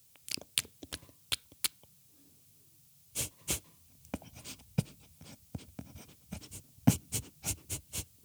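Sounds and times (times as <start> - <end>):
hedgehog snuffling and huffing in a garden at night: 3.2 - 8.2.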